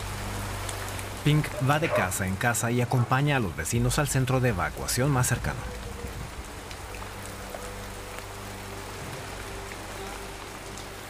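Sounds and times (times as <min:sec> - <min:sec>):
steady rain falling: 0:00.0 - 0:11.0
speech: 0:01.2 - 0:05.9.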